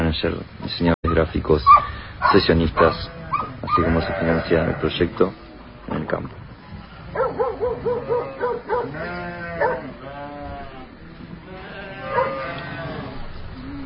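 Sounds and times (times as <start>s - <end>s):
speech: 0.2s - 6.4s
Maremma sheepdogs barking: 1.0s - 4.2s, 7.1s - 10.0s, 12.0s - 12.5s
steady outdoor murmur: 1.0s - 13.8s
flock of sheep bleating: 2.8s - 5.7s, 6.8s - 13.8s.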